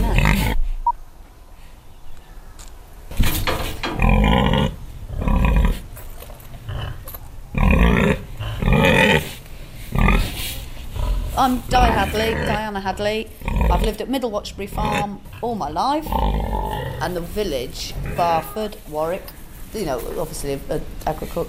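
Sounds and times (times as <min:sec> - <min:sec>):
pigs grunting and snorting on a farm: 0:00.0 - 0:00.7, 0:03.2 - 0:05.9, 0:06.6 - 0:14.0, 0:14.6 - 0:18.8
speech: 0:11.4 - 0:21.4.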